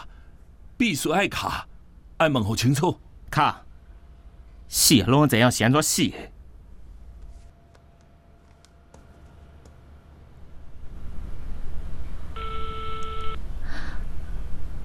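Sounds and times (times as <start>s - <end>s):
low hum: 0.0s - 14.8s
speech: 0.8s - 3.6s, 4.7s - 6.3s
steady electronic telephone ringing tone: 12.4s - 13.4s.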